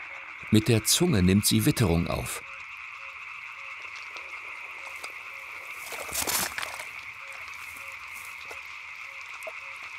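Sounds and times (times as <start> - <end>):
frogs croaking in an outdoor chorus to attract a mate: 0.0 - 9.9
speech: 0.5 - 2.5
rustle of movement: 4.9 - 8.8.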